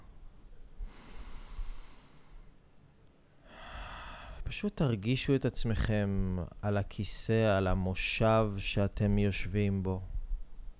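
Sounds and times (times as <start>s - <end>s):
long airy exhale: 0.8s - 2.6s, 3.4s - 4.4s
person taking a slow deep breath in through the nose during a relaxation exercise: 0.8s - 2.6s, 3.4s - 4.4s
speech: 4.5s - 10.1s.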